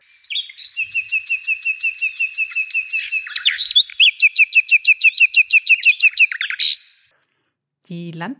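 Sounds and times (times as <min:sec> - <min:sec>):
nightingales singing in a song duel: 0:00.0 - 0:07.1
speech: 0:07.9 - 0:08.3.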